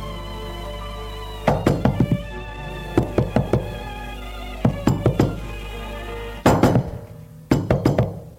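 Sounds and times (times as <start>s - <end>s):
firm knocking on a door: 1.5s - 2.3s, 3.0s - 3.8s, 4.6s - 5.4s, 6.5s - 8.2s.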